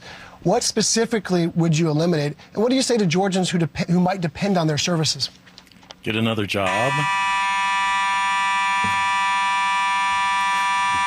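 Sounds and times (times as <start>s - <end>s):
speech: 0.4s - 5.4s, 6.0s - 7.2s
building alarm buzzer blaring: 6.6s - 11.0s.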